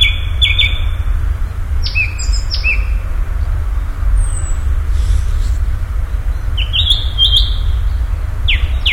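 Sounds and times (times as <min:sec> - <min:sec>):
common nightingale song: 0:00.0 - 0:08.9
low rumbling background: 0:00.0 - 0:08.9.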